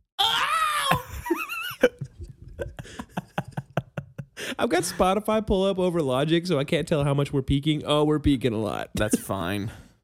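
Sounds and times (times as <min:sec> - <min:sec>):
person imitating a Wilhelm scream: 0:00.2 - 0:01.4
person laughing: 0:00.9 - 0:05.1
speech: 0:04.6 - 0:09.8.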